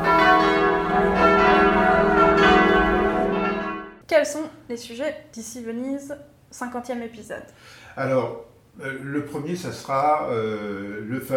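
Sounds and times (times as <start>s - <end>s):
church bells ringing: 0.0s - 4.0s
speech: 4.2s - 11.3s.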